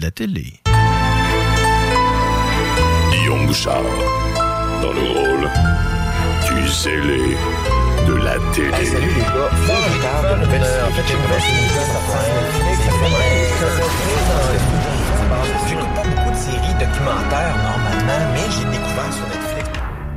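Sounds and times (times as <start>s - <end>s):
speech: 0.0s - 0.7s, 2.8s - 19.6s
loud busy musical jingle: 0.7s - 19.3s
cat meowing: 9.5s - 10.3s, 11.1s - 14.2s.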